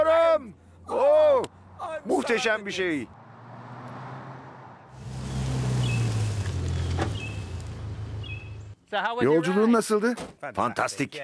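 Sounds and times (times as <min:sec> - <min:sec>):
broadband road and wind noise: 0:00.0 - 0:08.8
speech: 0:02.3 - 0:03.2, 0:08.9 - 0:11.2
amphibious car engine droning: 0:02.7 - 0:08.8.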